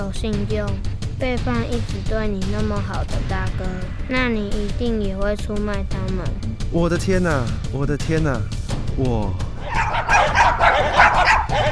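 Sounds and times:
speech: 0.1 - 9.5
dog barking: 9.6 - 11.7.

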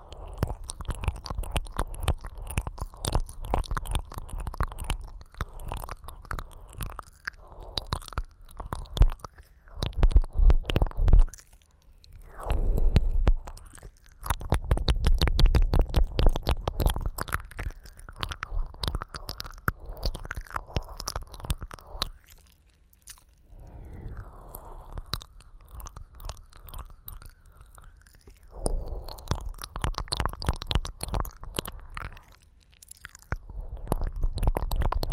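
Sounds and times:
wet ear licking: 0.0 - 35.1
low rumble: 23.4 - 25.8.

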